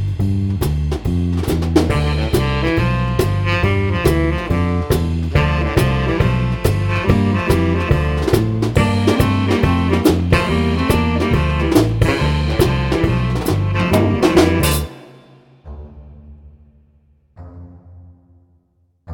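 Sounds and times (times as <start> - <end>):
cello playing swing: 0.2 - 15.1.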